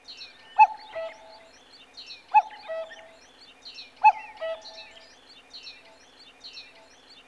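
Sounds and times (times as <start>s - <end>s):
bird chirp: 0.0s - 7.2s.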